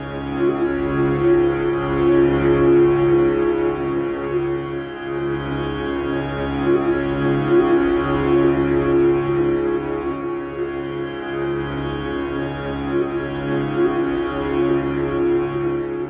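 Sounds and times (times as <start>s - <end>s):
big sitar drones and plucks: 0.0s - 16.0s.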